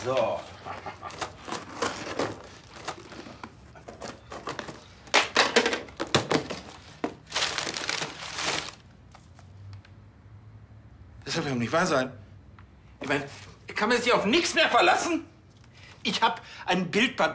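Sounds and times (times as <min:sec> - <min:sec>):
speech: 0:00.0 - 0:01.2, 0:11.3 - 0:12.2, 0:13.0 - 0:15.3, 0:16.0 - 0:17.3
paper and packaging crinkling as a parcel is cut open and unwrapped: 0:00.0 - 0:09.5.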